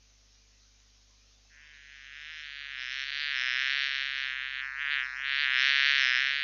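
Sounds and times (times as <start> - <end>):
mosquito buzzing: 1.6 - 6.4.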